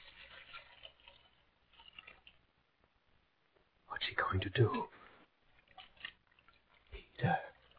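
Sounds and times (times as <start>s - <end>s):
water poured into a basin: 0.0s - 2.4s, 5.5s - 7.7s
water dripping into a basin: 0.0s - 3.0s, 4.0s - 7.7s
speech: 4.1s - 5.0s.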